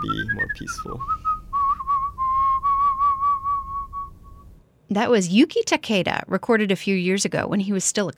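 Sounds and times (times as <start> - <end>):
speech: 0.0 - 1.3, 4.9 - 8.1
person whistling a clear steady tune: 0.0 - 4.4.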